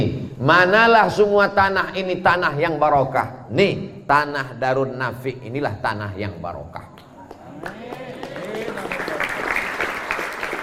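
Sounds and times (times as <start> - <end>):
speech: 0.0 - 7.0
audience clapping: 7.2 - 10.6.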